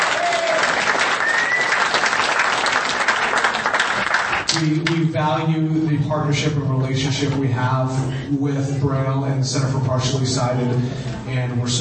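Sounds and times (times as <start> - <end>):
audience applause: 0.0 - 4.6
speech: 4.6 - 11.7.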